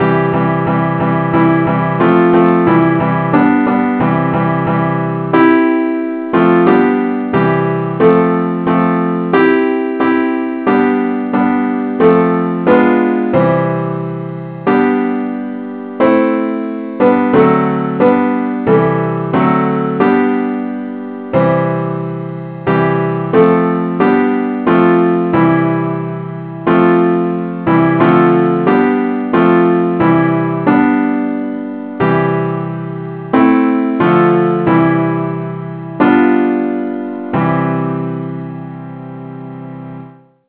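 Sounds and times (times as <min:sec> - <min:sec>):
simple accompaniment in C: 0:00.0 - 0:40.4.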